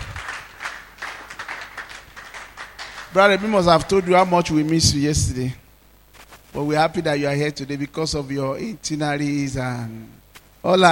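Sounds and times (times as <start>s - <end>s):
crowd clapping: 0.0s - 4.8s
speech: 3.1s - 5.6s, 6.5s - 10.8s.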